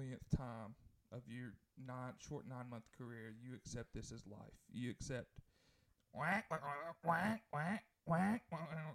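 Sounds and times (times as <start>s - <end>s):
speech: 0.0s - 5.4s, 6.1s - 8.9s
duck-call quacking ringtone on a phone: 6.2s - 8.9s.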